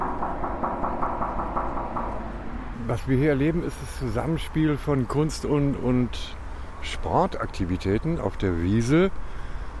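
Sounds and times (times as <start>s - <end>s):
rapid knocking on a hollow sculpture: 0.0s - 2.4s
steady low rumble: 0.0s - 3.6s
speech: 2.9s - 9.3s.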